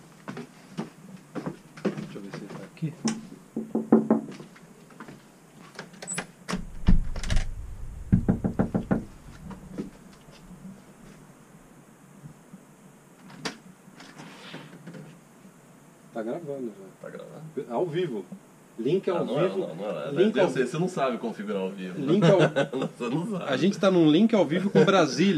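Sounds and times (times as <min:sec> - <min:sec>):
faint hiss: 0:00.0 - 0:25.3
speech: 0:02.8 - 0:03.2, 0:16.2 - 0:25.3
knocking on a house door: 0:03.1 - 0:04.4, 0:06.6 - 0:09.2
laughter: 0:22.0 - 0:23.1, 0:24.5 - 0:25.3.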